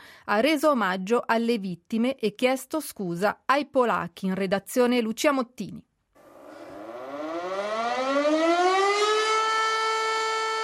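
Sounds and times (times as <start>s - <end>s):
speech: 0.3s - 5.9s
civil defense air raid siren wailing: 6.2s - 10.6s.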